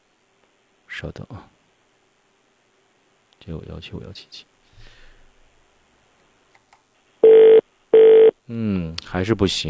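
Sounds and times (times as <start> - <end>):
speech: 1.0 - 1.6, 3.4 - 4.5, 8.5 - 9.6
electronic ringback tones through a phone line: 7.2 - 8.3.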